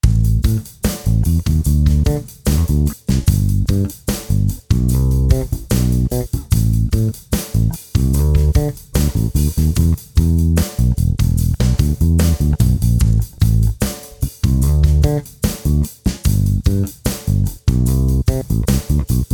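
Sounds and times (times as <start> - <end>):
bass guitar: 0.0 - 19.3
drum kit: 0.0 - 19.3.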